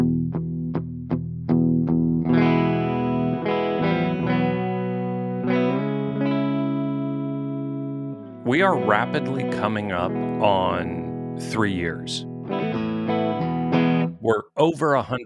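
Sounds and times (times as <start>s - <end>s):
Breedlove acoustic guitar sustained chords with heavy reverb and delay: 0.0s - 15.2s
speech: 8.5s - 12.7s, 14.3s - 15.2s.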